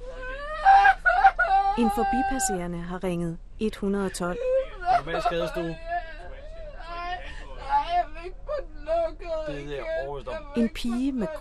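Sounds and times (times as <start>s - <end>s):
young woman crying and whimpering on a pedestrian shopping street: 0.0s - 2.7s, 4.0s - 11.3s
speech: 1.8s - 5.9s, 9.2s - 11.3s.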